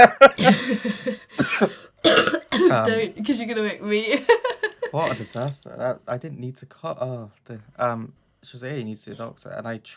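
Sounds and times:
speech: 0.0s - 1.0s, 2.8s - 9.9s
laughter: 0.0s - 1.2s
person coughing harshly: 0.2s - 2.9s.

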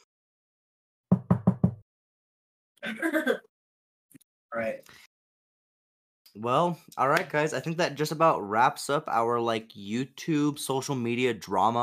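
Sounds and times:
quick knocks on wood: 1.1s - 1.8s
speech: 2.9s - 3.4s, 4.6s - 5.0s, 6.4s - 11.8s.

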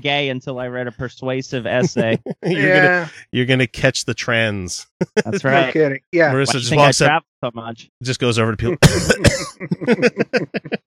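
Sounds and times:
speech: 0.0s - 10.8s
voice imitating harsh hacking open-mouth coughs: 1.8s - 3.3s, 5.0s - 5.7s, 8.7s - 10.8s
laughter: 1.8s - 3.4s, 4.4s - 7.1s, 8.6s - 10.8s.

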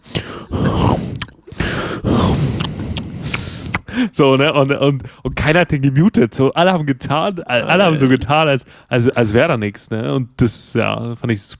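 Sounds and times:
faint wet munching of a cookie: 0.0s - 4.0s
voice imitating a man's heavy panting: 0.0s - 4.1s
speech: 4.0s - 11.5s.

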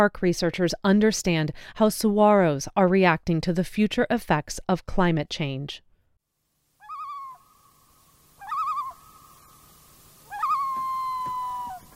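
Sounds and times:
speech: 0.0s - 5.9s
common loon calls echoing across mountain lakes: 6.8s - 11.9s.

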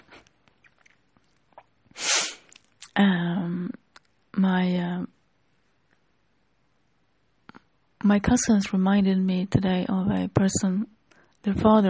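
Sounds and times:
person sneezing: 2.0s - 2.6s
speech: 4.4s - 5.1s, 8.1s - 11.8s.

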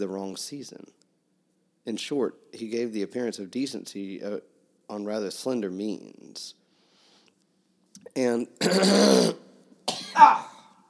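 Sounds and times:
speech: 0.0s - 1.0s, 1.8s - 6.6s, 8.0s - 10.5s
person coughing: 8.6s - 10.7s.

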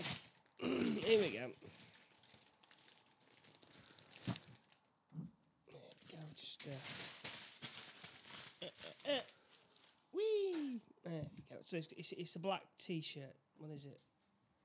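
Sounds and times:
kids' wrapping paper crinkling and tearing as a gift is unwrapped: 0.0s - 4.9s, 5.9s - 10.8s
speech: 1.1s - 1.8s, 6.6s - 7.1s, 10.7s - 14.1s
person exclaiming: 8.6s - 9.4s, 10.2s - 11.2s.

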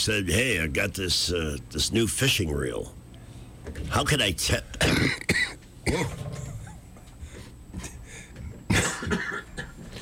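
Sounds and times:
speech: 0.0s - 3.0s, 3.6s - 6.4s
harsh coughing and throat clearing: 4.8s - 6.8s, 8.7s - 10.0s.

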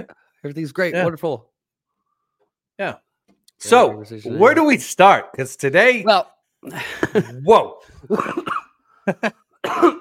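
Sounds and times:
speech: 0.0s - 1.5s, 2.8s - 3.0s, 3.6s - 9.9s
person clearing throat: 8.1s - 8.8s, 9.6s - 9.9s
person coughing gravelly: 8.1s - 8.8s, 9.6s - 9.9s.

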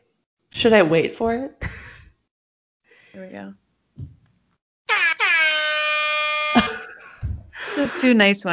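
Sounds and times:
speech: 0.6s - 1.8s, 3.1s - 4.2s, 7.8s - 8.5s
celebratory air horn blasts: 4.9s - 6.9s
laughter: 6.4s - 8.2s.

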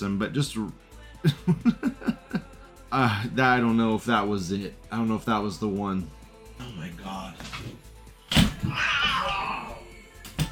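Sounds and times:
speech: 0.0s - 2.0s, 2.9s - 7.5s
laughter: 1.2s - 2.7s
cat yowling: 8.6s - 9.8s.

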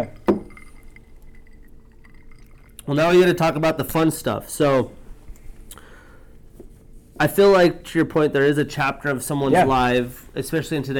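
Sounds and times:
glasses clinking together in a toast: 0.0s - 2.8s
soft liquid swirl: 0.0s - 2.9s
speech: 2.9s - 5.0s, 7.2s - 10.9s.

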